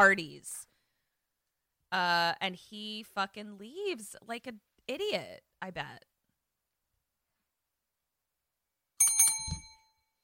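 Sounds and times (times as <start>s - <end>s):
speech: 0.0s - 0.6s, 1.9s - 6.1s
bell ringing: 9.0s - 10.1s.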